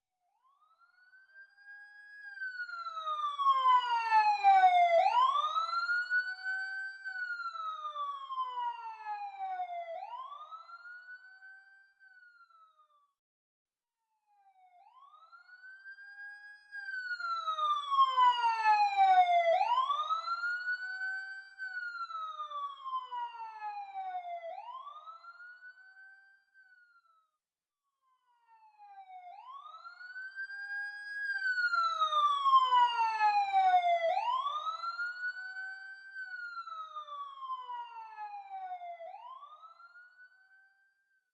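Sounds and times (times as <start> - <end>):
police siren with doppler passing slowly outdoors: 1.8 - 11.2, 14.8 - 26.3, 28.5 - 40.3.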